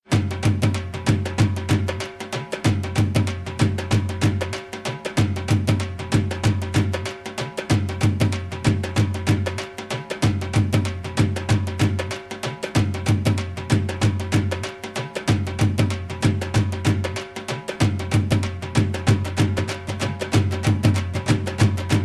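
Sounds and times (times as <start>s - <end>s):
Punjabi dhol drum rhythm: 0.0s - 22.0s.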